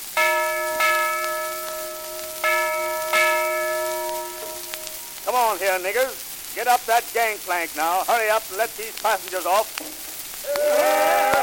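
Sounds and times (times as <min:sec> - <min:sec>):
big bell ringing as a boat lands on a river: 0:00.0 - 0:06.5
speech: 0:05.5 - 0:11.2.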